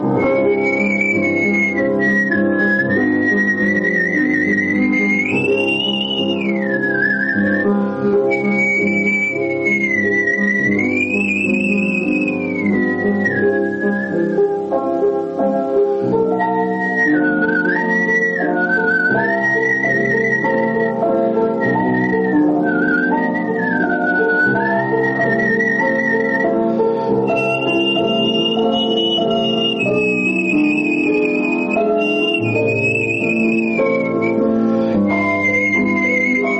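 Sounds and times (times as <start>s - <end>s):
man whistling a melody: 0.0s - 14.8s, 16.4s - 36.5s
steady instrumental accompaniment: 0.0s - 36.5s.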